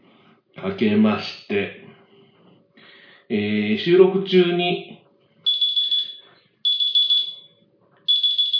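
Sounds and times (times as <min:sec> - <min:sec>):
speech: 0:00.6 - 0:01.9, 0:03.3 - 0:05.0
electronic alarm beeping: 0:05.4 - 0:08.5.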